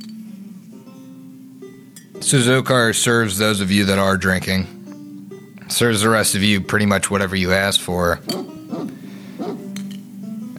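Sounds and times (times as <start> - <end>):
speech: 2.2 - 4.8, 5.7 - 8.5
dog barking: 8.3 - 9.7.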